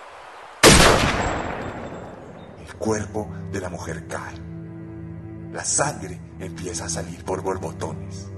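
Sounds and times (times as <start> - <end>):
rifle shot fired through a telescopic sight in a forest in Alaska: 0.6 - 2.4
speech: 2.7 - 4.5, 5.5 - 8.3.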